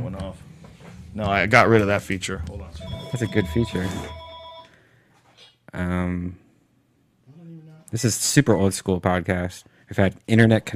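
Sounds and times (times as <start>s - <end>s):
speech: 1.2s - 4.2s, 5.7s - 6.4s, 7.9s - 10.7s
telephone ringing with an electronic tone: 2.8s - 4.8s.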